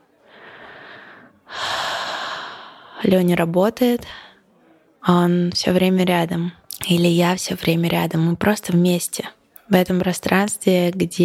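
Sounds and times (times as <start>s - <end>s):
deep breathing close to the microphone: 0.2s - 3.0s
speech: 3.0s - 4.2s, 5.0s - 11.2s.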